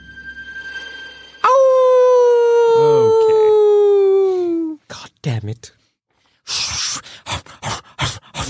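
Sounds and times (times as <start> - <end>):
werewolf howl sound effect: 1.4 - 4.8
speech: 5.5 - 5.8.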